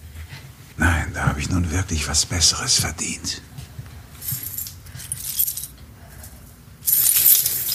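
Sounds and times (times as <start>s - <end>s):
speech: 1.4s - 3.5s
metal keys on a keyring jangling: 4.2s - 7.7s.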